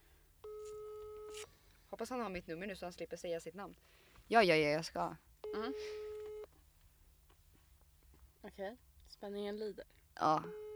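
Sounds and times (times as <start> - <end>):
telephone ringback tone: 0.4 - 1.5, 5.4 - 6.5, 10.2 - 10.7
speech: 1.9 - 6.0, 8.5 - 10.6.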